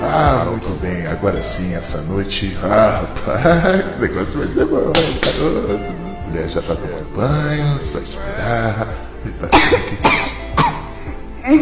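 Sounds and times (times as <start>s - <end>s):
speech: 0.2s - 10.4s, 11.4s - 11.6s
young girl coughing: 9.5s - 10.9s.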